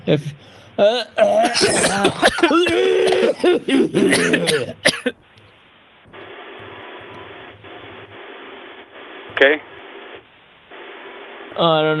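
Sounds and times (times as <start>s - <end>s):
speech: 0.0s - 5.2s, 9.4s - 9.7s, 11.6s - 11.9s
person coughing after falling ill from a meal: 0.8s - 5.2s.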